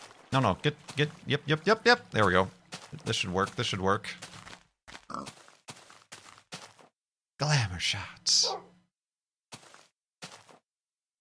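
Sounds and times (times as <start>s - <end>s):
speech: 0.3s - 4.2s, 7.4s - 8.5s
pig grunting and oinking: 5.1s - 5.4s.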